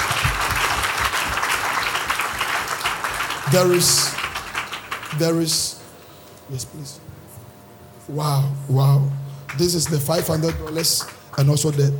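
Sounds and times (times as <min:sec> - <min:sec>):
audience clapping hands: 0:00.0 - 0:05.7, 0:09.5 - 0:11.9
speech: 0:03.5 - 0:04.2, 0:05.2 - 0:05.8, 0:06.5 - 0:07.0, 0:08.1 - 0:11.9.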